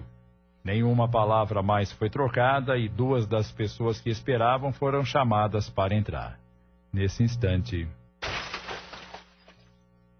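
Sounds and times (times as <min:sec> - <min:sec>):
speech: 0:00.6 - 0:08.0
car crash: 0:08.2 - 0:09.6
shattering glass and debris: 0:08.2 - 0:09.7.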